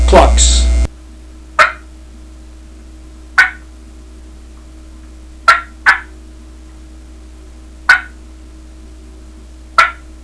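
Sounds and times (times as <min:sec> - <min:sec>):
turkey clucking: 0:01.6 - 0:01.9, 0:03.4 - 0:03.7, 0:05.4 - 0:06.2, 0:07.9 - 0:08.2, 0:09.8 - 0:10.1.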